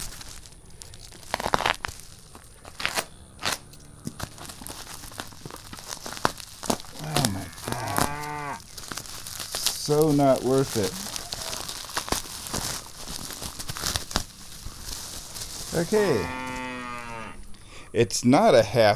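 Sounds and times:
plastic squeaking and rubbing: 0.0 - 16.8
knife cutting through plastic tape and bubble wrap around a small can: 1.1 - 2.1, 2.7 - 14.3
speech: 9.9 - 11.1, 15.8 - 16.4, 18.0 - 18.9.

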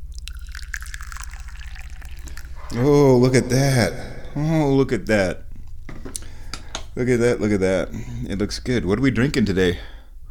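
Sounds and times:
constant low electrical hum: 0.0 - 10.2
tea poured into a cup: 0.1 - 3.6
speech: 2.7 - 5.4, 7.0 - 9.9.

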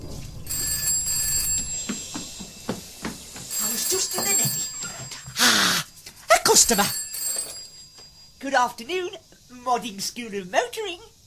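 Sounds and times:
faint knocks: 0.0 - 5.4
telephone ringing with a high electronic trill: 0.5 - 8.4
speech: 6.6 - 7.0, 8.4 - 11.1.

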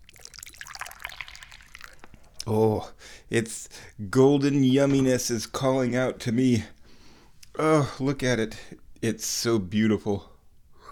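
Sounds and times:
Dahong Pao tea pouring into a cup: 0.0 - 2.5
speech: 2.5 - 6.8, 7.6 - 10.3.

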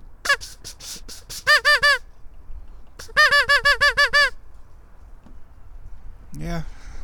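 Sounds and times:
person imitating quacks: 0.3 - 2.0, 3.0 - 4.4
goose honking: 1.5 - 2.0, 3.0 - 4.4.

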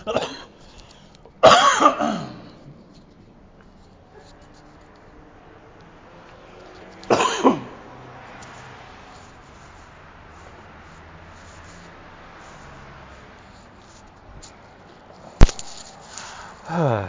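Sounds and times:
coughing and throat clearing: 0.0 - 0.6, 1.4 - 2.8, 7.1 - 7.8
faint noise: 0.0 - 17.0.

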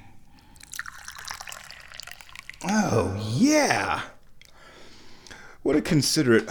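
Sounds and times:
tea being poured into a cup: 0.6 - 2.9
speech: 2.6 - 4.1, 5.6 - 6.5.

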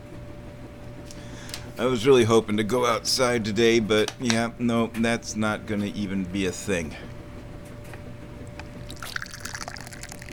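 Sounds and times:
low hum: 0.0 - 10.3
speech: 1.8 - 7.2
tea being poured into a cup: 8.8 - 10.3.

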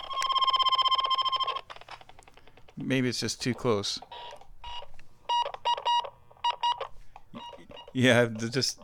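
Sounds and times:
Morse code key tones over radio: 0.0 - 1.6, 4.1 - 8.8
speech: 2.8 - 4.4, 8.0 - 8.8.

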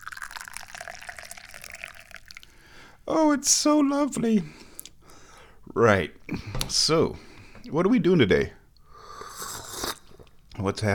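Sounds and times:
tea pouring into a teacup: 0.0 - 2.6
speech: 3.1 - 4.6, 5.8 - 8.6, 10.6 - 10.9.

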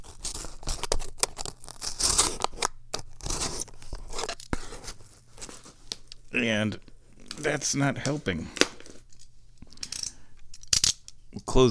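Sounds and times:
utility knife blade cutting under a label: 0.0 - 5.7
speech: 6.4 - 8.6.

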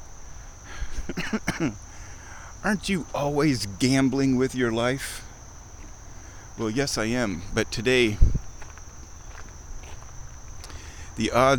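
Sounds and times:
low hum: 0.0 - 11.5
steady high insect whine at a dragonfly pond: 0.0 - 11.5
speech: 1.1 - 1.9, 2.6 - 5.3, 6.6 - 8.4, 11.2 - 11.5
soft footsteps walking around a dragonfly pond: 5.7 - 6.0, 8.2 - 10.8.

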